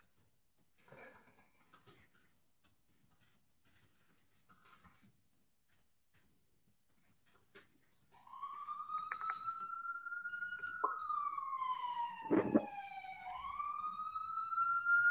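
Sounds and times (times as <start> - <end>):
emergency vehicle siren wailing as it passes: 8.1 - 15.1.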